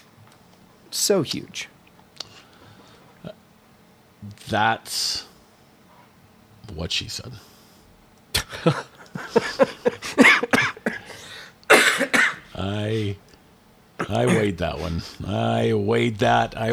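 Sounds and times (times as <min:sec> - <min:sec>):
speech: 0:00.9 - 0:01.7, 0:04.2 - 0:05.3, 0:06.8 - 0:07.5, 0:08.6 - 0:08.9, 0:14.1 - 0:16.7
breathy voiced bursts: 0:07.4 - 0:13.3, 0:14.0 - 0:15.4
laughter: 0:08.3 - 0:11.5, 0:14.0 - 0:16.7
person coughing: 0:08.4 - 0:12.5, 0:14.0 - 0:15.0.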